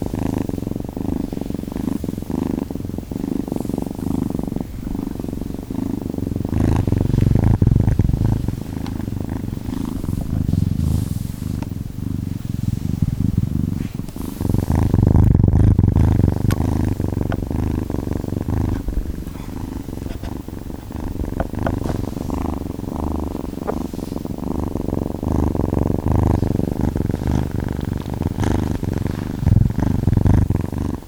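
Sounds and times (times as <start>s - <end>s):
kittens purring: 0.0s - 31.0s.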